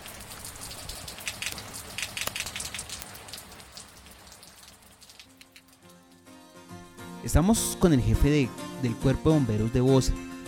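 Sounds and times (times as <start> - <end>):
rain on a hard surface: 0.0 - 6.7
speech: 7.2 - 10.4.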